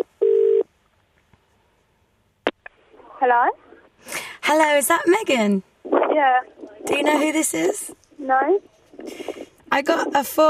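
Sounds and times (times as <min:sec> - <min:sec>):
telephone tone beep: 0:00.0 - 0:00.6
speech: 0:03.2 - 0:10.4.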